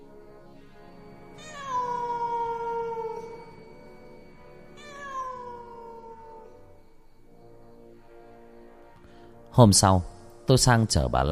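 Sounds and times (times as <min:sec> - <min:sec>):
cat wailing mournfully with fur bristling: 0:01.4 - 0:03.9, 0:04.6 - 0:06.7
speech: 0:09.6 - 0:11.3.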